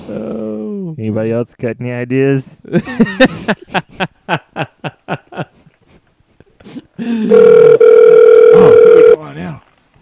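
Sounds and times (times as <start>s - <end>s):
speech: 0.1s - 4.4s
people laughing: 2.7s - 5.7s
electronic phone ringing tone from a call being placed: 7.2s - 9.2s.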